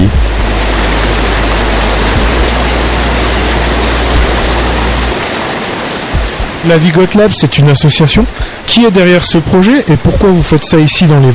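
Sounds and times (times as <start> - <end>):
deep low rumble of stream: 0.0 - 5.2
stream in the Vosges France rushing: 0.0 - 11.3
speech: 6.6 - 11.3.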